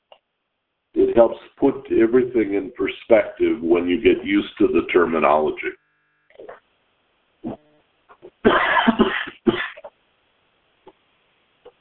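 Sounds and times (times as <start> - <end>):
speech: 1.2 - 5.8
person coughing from powder in the air of a room: 8.4 - 9.9.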